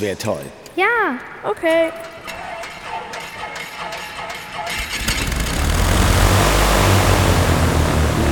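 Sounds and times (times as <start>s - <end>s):
speech: 0.0s - 2.3s
aircraft propeller engine starting up and droning: 4.7s - 8.2s.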